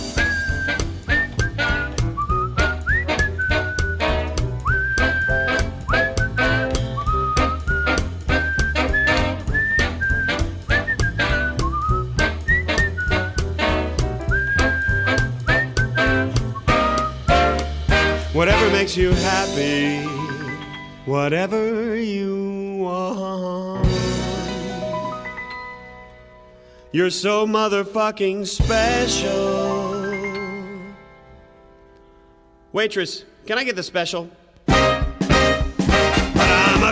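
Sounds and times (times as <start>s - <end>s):
steady drums in a band backing: 0.0s - 20.6s, 23.8s - 25.4s, 28.6s - 29.6s, 34.6s - 36.9s
whistled melody with sliding notes: 0.0s - 21.2s, 23.8s - 26.8s
bass in a band backing: 0.0s - 32.6s, 34.6s - 36.9s
speech: 21.1s - 22.3s, 27.0s - 29.8s, 32.7s - 34.8s.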